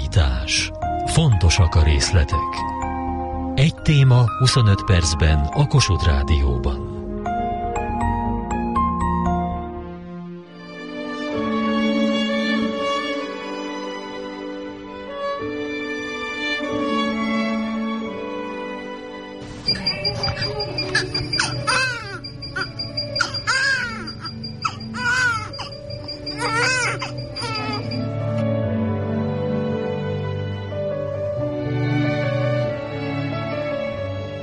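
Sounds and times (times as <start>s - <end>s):
soft sustained music: 0.0s - 34.4s
speech: 0.2s - 2.7s, 3.6s - 6.9s
newborn baby crying: 20.3s - 28.0s.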